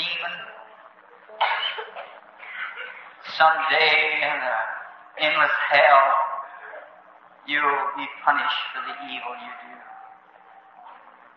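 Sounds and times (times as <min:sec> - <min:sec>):
child with an asthmatic condition coughing and choking: 0:01.4 - 0:03.0
speech: 0:03.4 - 0:06.3, 0:07.4 - 0:09.9.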